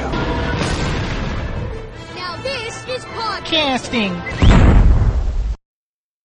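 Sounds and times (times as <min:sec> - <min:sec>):
explosion with heavy low rumble and crackling: 0:00.1 - 0:01.9, 0:04.4 - 0:05.6
speech: 0:02.9 - 0:04.6.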